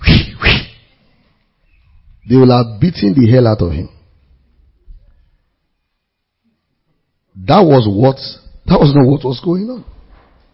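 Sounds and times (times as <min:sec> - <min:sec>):
whip cracks: 0:00.0 - 0:00.8
speech: 0:02.3 - 0:04.0, 0:07.4 - 0:09.9.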